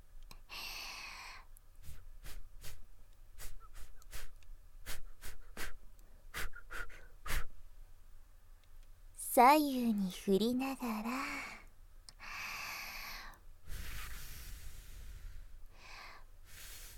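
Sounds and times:
short sharp puffs of breath: 0:00.5 - 0:07.5, 0:12.2 - 0:16.9
long airy breath blown onto the listener's neck: 0:01.8 - 0:02.8, 0:03.4 - 0:07.5, 0:13.1 - 0:16.9
speech: 0:09.4 - 0:11.3.

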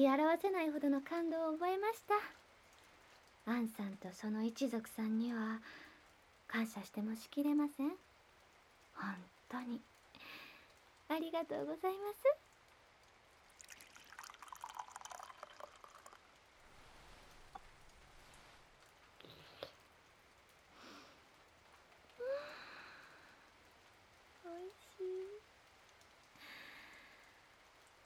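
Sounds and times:
speech: 0:00.0 - 0:02.4, 0:03.4 - 0:05.9, 0:06.5 - 0:08.1, 0:09.0 - 0:10.4, 0:11.1 - 0:12.4
soft steady rain: 0:00.0 - 0:28.0.

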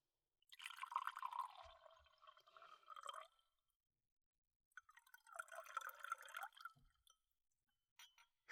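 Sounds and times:
liquor pouring into a glass: 0:00.5 - 0:03.6, 0:04.7 - 0:07.2.

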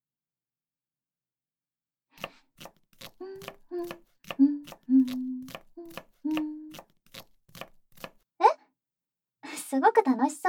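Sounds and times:
knife chopping food on a board while cooking: 0:02.2 - 0:08.2
person humming: 0:03.0 - 0:06.9.

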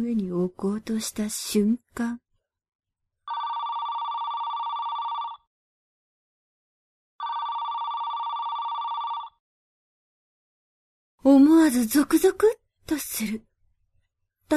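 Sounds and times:
speech: 0:00.0 - 0:02.2, 0:11.2 - 0:13.5
mobile phone ringing: 0:03.3 - 0:05.5, 0:07.2 - 0:09.4.

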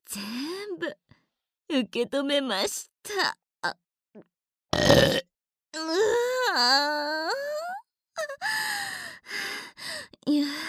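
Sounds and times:
speech: 0:00.1 - 0:01.1, 0:01.7 - 0:07.6, 0:10.2 - 0:10.6
loud raspy burp: 0:04.7 - 0:05.3.

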